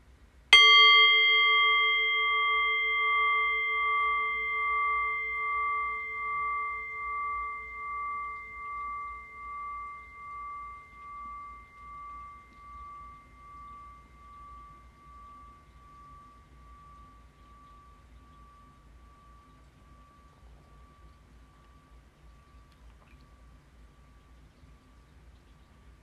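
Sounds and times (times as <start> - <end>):
meditation bell struck and ringing: 0.5 - 25.2.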